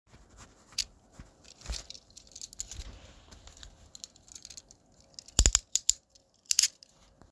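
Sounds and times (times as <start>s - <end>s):
handcuffs locking: 1.5s - 6.9s.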